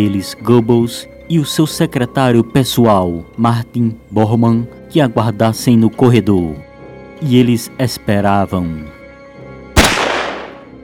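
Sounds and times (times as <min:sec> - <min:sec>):
speech: 0:00.0 - 0:09.0
gunshot fired inside a personal bunker: 0:09.8 - 0:10.7.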